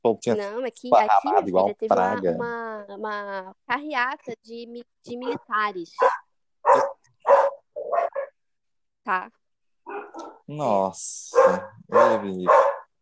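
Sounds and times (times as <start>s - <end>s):
speech: 0.1s - 6.2s, 9.0s - 12.7s
Dalmatian dogs barking: 6.0s - 8.4s, 9.9s - 10.5s, 11.3s - 12.9s.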